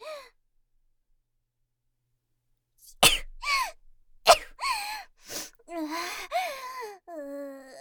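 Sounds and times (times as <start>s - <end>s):
person sneezing: 3.0s - 3.7s
breathy wavering vocal sighs and moans: 5.7s - 7.8s.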